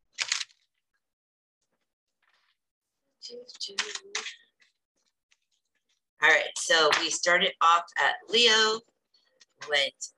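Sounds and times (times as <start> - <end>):
tarot card deck shuffling with papery riffling and slapping: 0.1 - 0.7
speech: 3.3 - 4.5, 6.2 - 8.9, 9.6 - 10.1.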